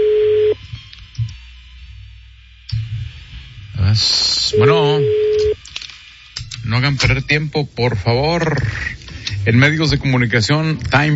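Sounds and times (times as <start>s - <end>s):
phone line ringback tone: 0.0s - 0.6s, 4.5s - 5.6s
speech: 4.0s - 4.8s, 6.8s - 11.1s.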